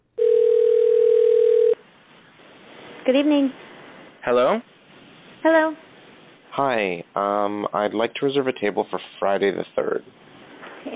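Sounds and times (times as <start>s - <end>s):
steady electronic telephone tone before a call: 0.2s - 1.8s
faint telephone line hiss: 1.8s - 10.9s
speech: 3.1s - 3.6s, 4.2s - 4.7s, 5.4s - 5.9s, 6.6s - 10.2s.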